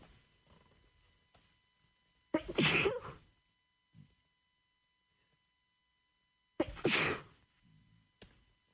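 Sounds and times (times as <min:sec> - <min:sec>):
person sneezing: 0:02.4 - 0:03.2, 0:06.6 - 0:07.4
speech: 0:02.6 - 0:03.0.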